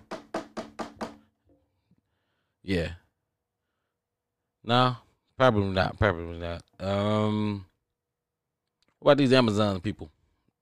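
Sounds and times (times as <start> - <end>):
loud police-style knocking on a door: 0.0 - 1.2
speech: 2.6 - 3.0, 4.6 - 7.7, 9.0 - 10.2.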